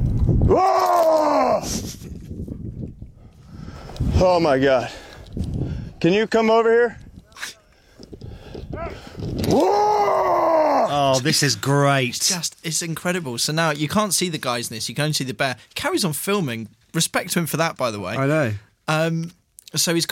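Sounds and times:
rustling outdoor noise: 0:00.0 - 0:20.1
speech: 0:00.5 - 0:00.8, 0:04.2 - 0:05.0, 0:06.0 - 0:07.0, 0:09.5 - 0:20.1
men roaring at a bear to scare it off: 0:00.5 - 0:01.7, 0:08.8 - 0:11.1.

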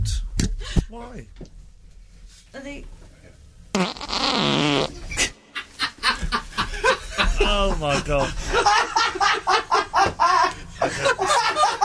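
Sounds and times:
speech: 0:00.9 - 0:01.6, 0:02.5 - 0:03.1, 0:07.5 - 0:10.2
loud fart into a microphone in a radio studio: 0:03.7 - 0:05.3
people laughing and snickering: 0:05.5 - 0:11.8.

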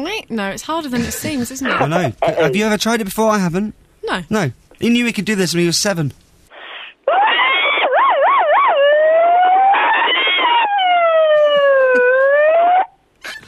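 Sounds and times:
speech: 0:00.0 - 0:06.2
person imitating an emergency vehicle siren with their voice: 0:01.7 - 0:02.6, 0:07.1 - 0:13.0.

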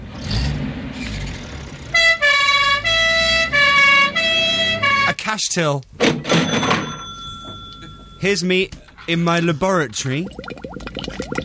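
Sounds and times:
low traffic rumble: 0:00.0 - 0:11.4
old-style 1960s two-tone ambulance siren: 0:02.0 - 0:05.1
speech: 0:05.3 - 0:06.2, 0:08.2 - 0:10.6.

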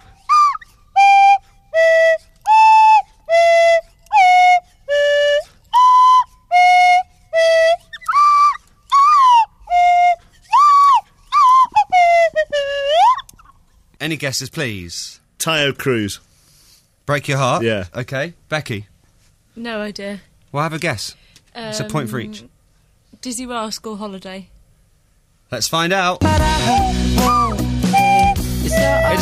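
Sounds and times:
Swanee slide whistle playing a bouncy pop melody: 0:00.0 - 0:13.5, 0:26.2 - 0:29.2
speech: 0:14.1 - 0:16.3, 0:17.1 - 0:18.9, 0:19.6 - 0:22.5, 0:23.2 - 0:24.5, 0:25.5 - 0:27.4.

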